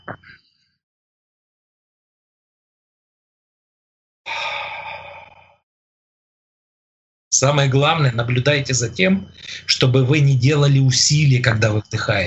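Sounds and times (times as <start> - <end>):
deep inhale through the nose in a breathing exercise: 4.3 - 5.6
soft, effortless exhale in a breathing exercise: 4.3 - 5.6
speech: 7.3 - 12.2.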